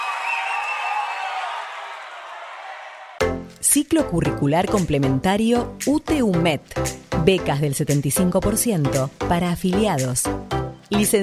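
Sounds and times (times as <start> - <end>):
audience applause: 0.0 - 3.2
speech: 3.2 - 11.2.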